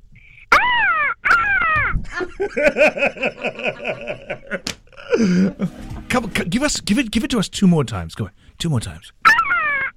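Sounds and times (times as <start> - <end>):
five-year-old child imitating a hadeda ibis call: 0.5 - 2.0, 9.3 - 9.9
laughter: 2.0 - 6.0
speech: 2.2 - 4.3, 5.2 - 9.2.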